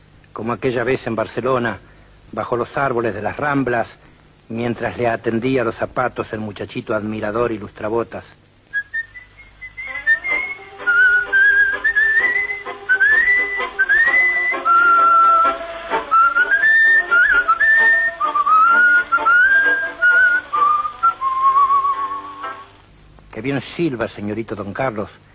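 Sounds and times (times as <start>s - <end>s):
speech: 0.4s - 8.4s, 23.5s - 25.2s
person whistling a lively melody with tongue tip folded: 8.7s - 22.6s.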